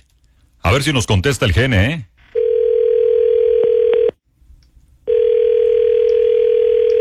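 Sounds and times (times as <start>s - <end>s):
speech: 0.6s - 2.1s
ringback tone on an outgoing telephone call: 2.4s - 4.2s, 5.1s - 6.9s.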